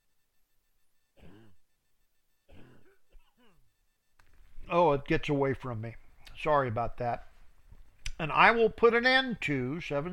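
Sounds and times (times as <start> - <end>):
person clearing their throat: 1.2 - 1.7, 2.5 - 3.7
person coughing: 1.2 - 1.7, 2.5 - 3.7
speech: 4.7 - 7.3, 8.2 - 10.1.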